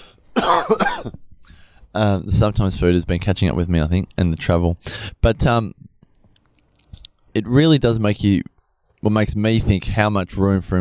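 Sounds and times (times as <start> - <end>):
person coughing: 0.0 - 1.2
speech: 0.5 - 1.2, 1.9 - 5.9, 7.4 - 10.7
quiet breathing: 1.4 - 2.0.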